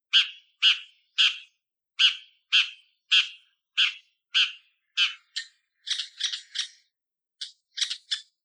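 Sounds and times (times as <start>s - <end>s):
bull-headed shrike singing: 0.0s - 8.4s.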